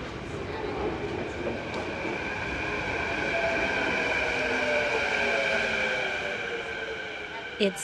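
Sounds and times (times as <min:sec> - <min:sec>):
light rail train rumbling through a station: 0:00.0 - 0:07.8
speech: 0:07.6 - 0:07.8.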